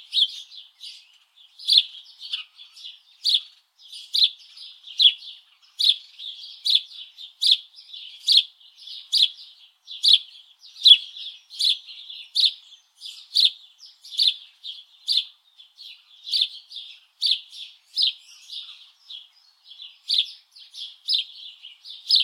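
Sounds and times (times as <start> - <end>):
house sparrow Passer domesticus chirping: 0.0 - 22.2.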